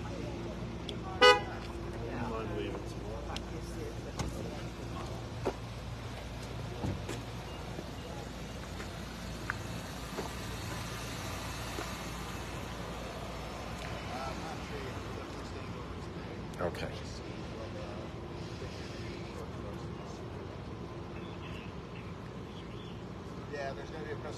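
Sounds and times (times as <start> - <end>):
cars driving up a road: 0.0 - 24.3
car horn toot: 1.2 - 1.6.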